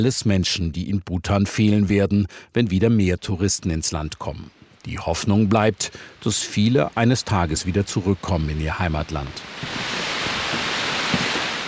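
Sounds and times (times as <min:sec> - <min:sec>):
speech: 0:00.0 - 0:10.0
rushing waterfall below a monastery in Bhutan: 0:05.4 - 0:11.6.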